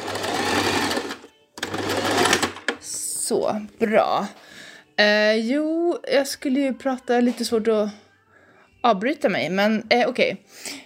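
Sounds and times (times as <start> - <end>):
sewing machine stitching a seam: 0.0 - 2.8
speech: 3.3 - 4.4, 5.0 - 8.0, 8.8 - 10.8.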